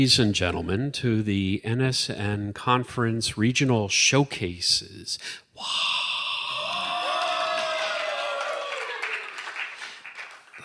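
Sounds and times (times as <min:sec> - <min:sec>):
speech: 0:00.0 - 0:06.0
whoops and shouts: 0:05.6 - 0:09.4
crowd at a storytelling conference showcase cheering and applauding: 0:06.5 - 0:10.6.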